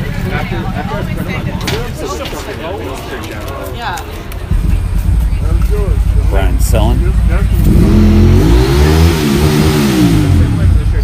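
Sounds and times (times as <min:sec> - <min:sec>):
speech: 0:00.4 - 0:04.4, 0:05.7 - 0:08.2
motorcycle engine revving and idling: 0:04.5 - 0:11.0.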